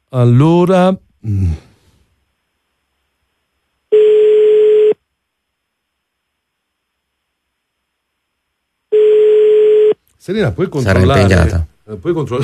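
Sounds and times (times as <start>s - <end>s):
speech: 0.1s - 1.7s, 10.2s - 12.4s
ringback tone of an outgoing telephone call: 3.9s - 5.0s, 8.9s - 10.0s.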